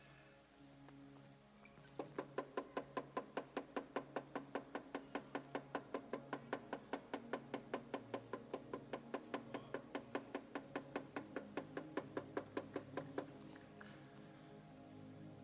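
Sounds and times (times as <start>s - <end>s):
knocking on a door: 2.0s - 13.3s.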